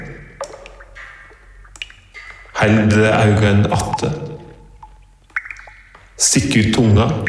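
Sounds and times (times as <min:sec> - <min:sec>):
water dripping inside a sea cave in Croatia: 0:00.0 - 0:07.2
speech: 0:02.6 - 0:04.2, 0:06.2 - 0:07.2.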